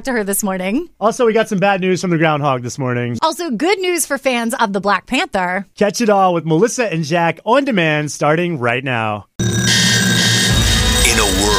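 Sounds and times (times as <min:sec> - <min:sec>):
speech: 0:00.0 - 0:09.3
alarm clock ringing with a harsh electronic tone: 0:09.4 - 0:11.5.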